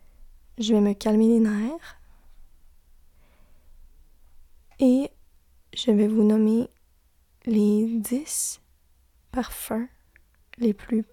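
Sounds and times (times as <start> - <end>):
speech: 0.6 - 2.0, 4.8 - 5.2, 5.8 - 6.7, 7.4 - 8.6, 9.3 - 10.0, 10.6 - 11.1
slow deep breath: 3.1 - 3.9.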